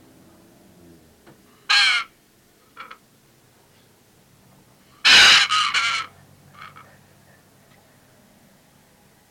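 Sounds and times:
Pesquet's parrot giving harsh, rasping screeches: 1.7s - 2.1s, 5.0s - 6.8s.

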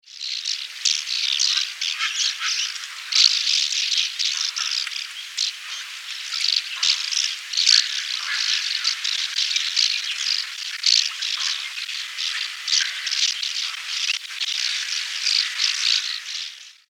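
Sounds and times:
streak-throated swallow calling: 0.1s - 16.8s.

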